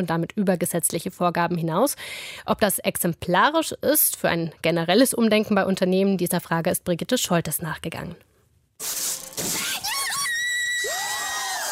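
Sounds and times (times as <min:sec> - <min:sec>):
speech: 0:00.0 - 0:09.1
loud high-pitched joyful scream with shrill squeals: 0:09.5 - 0:11.7.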